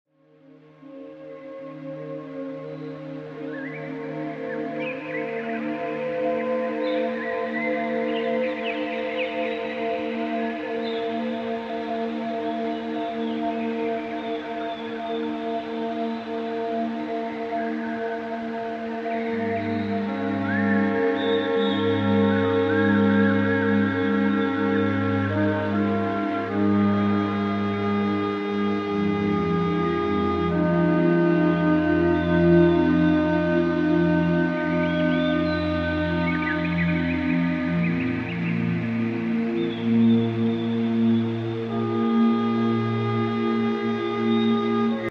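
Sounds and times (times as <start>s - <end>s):
Native flute tone at 192 Hz: 1.7s - 45.0s.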